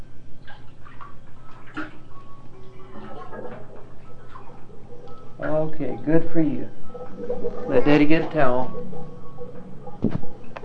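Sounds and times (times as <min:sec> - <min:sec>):
bathwater draining from a tub after the stopper is pulled: 0:00.4 - 0:06.7
speech: 0:05.6 - 0:08.9.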